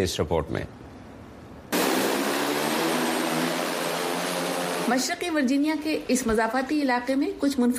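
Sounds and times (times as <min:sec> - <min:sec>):
speech: 0:00.0 - 0:00.8, 0:04.9 - 0:07.7
delivery drone propellers buzzing overhead in a suburb of eastern Virginia: 0:01.7 - 0:04.9.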